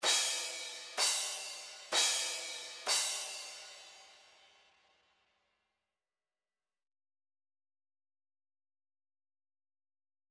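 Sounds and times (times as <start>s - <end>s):
MIDI crash cymbal: 0.0s - 5.1s.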